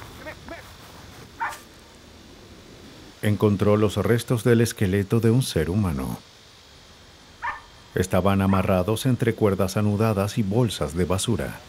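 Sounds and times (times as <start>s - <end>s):
dog barking at a distance: 1.4s - 1.6s, 7.4s - 7.7s
speech: 3.2s - 6.3s, 8.0s - 11.6s.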